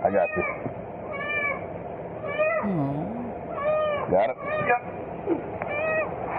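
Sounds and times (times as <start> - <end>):
steady hiss: 0.0 - 6.3
speech: 0.1 - 0.7, 2.6 - 3.0, 4.1 - 4.5
kitten meowing in a storm drain: 0.1 - 1.6, 2.2 - 4.7.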